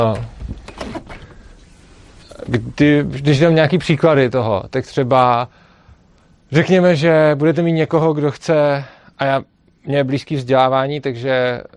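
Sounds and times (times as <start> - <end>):
speech: 0.0 - 0.3, 2.5 - 5.7, 6.5 - 11.7
door closing with scraping, rattling and soft knocks: 0.0 - 2.7.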